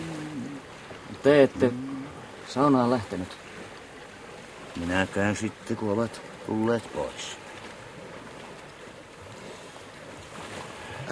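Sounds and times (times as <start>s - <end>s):
sea wind blowing by the shore: 0.0s - 11.1s
waves or surf rumbling: 0.0s - 11.1s
speech: 1.2s - 1.8s, 2.5s - 3.4s, 4.8s - 7.4s.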